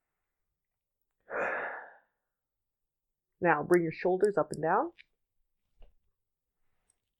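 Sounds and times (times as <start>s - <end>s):
deep breath during a guided stress-reduction exercise: 1.2s - 2.3s
speech: 3.4s - 5.1s.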